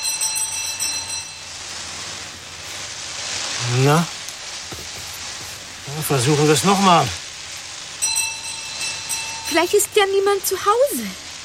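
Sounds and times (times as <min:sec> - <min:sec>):
doorbell ringing from a pull cord: 0:00.0 - 0:01.6, 0:08.0 - 0:10.2
steady hiss of noise: 0:00.0 - 0:11.4
speech: 0:03.6 - 0:04.2, 0:06.0 - 0:07.2, 0:09.5 - 0:11.2.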